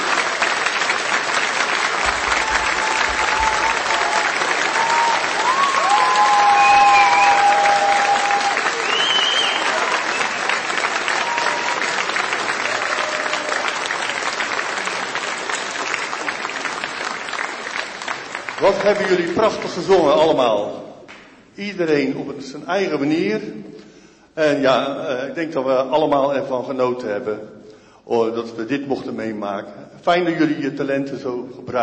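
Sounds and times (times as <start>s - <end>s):
large audience applause: 0.0s - 19.8s
faint whistles and cheers: 2.3s - 12.0s, 12.6s - 13.8s
speech: 18.8s - 20.8s, 21.6s - 23.8s, 24.4s - 31.8s.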